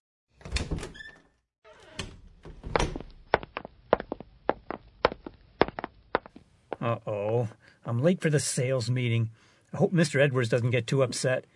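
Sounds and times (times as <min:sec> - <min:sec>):
door-like clatter and thump: 0:00.4 - 0:01.3, 0:01.9 - 0:03.2
brisk footsteps clicking on a hard floor: 0:02.6 - 0:06.8
speech: 0:06.8 - 0:11.5.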